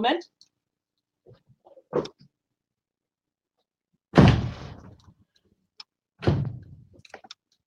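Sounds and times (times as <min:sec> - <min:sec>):
speech: 0:00.0 - 0:00.4, 0:01.3 - 0:02.2
balcony door thudding shut: 0:04.2 - 0:04.8, 0:06.2 - 0:06.7
balcony door banging with rumbling decay: 0:04.2 - 0:05.0.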